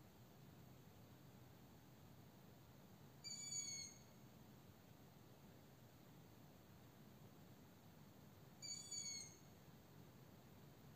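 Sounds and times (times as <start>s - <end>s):
steady low hiss: 0.0s - 10.9s
owl giving a high thin whistled call: 3.2s - 4.0s, 8.6s - 9.4s.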